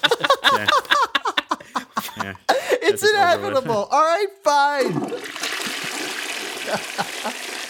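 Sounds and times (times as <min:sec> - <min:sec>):
laughter: 0:00.0 - 0:03.9, 0:06.6 - 0:07.5
speech: 0:03.2 - 0:05.3, 0:06.7 - 0:07.6
short gurgling pulses of toilet water: 0:04.8 - 0:07.6
toilet flushing with a steady rush of water: 0:04.8 - 0:07.6.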